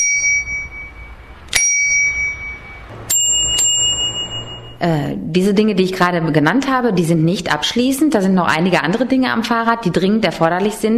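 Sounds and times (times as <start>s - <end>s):
bright high-pitched bicycle bell ringing: 0.0s - 4.8s
speech: 4.8s - 10.9s.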